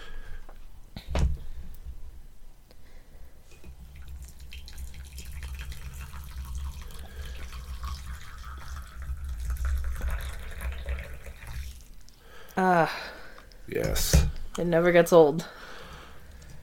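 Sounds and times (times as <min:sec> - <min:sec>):
tea pouring into a cup: 0:03.8 - 0:12.2
speech: 0:12.6 - 0:13.1, 0:13.7 - 0:15.6.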